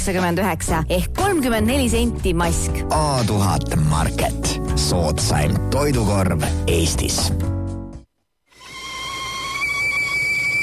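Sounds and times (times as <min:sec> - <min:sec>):
speech: 0:00.0 - 0:07.5
kettle whistling as water boils for tea: 0:08.5 - 0:10.6.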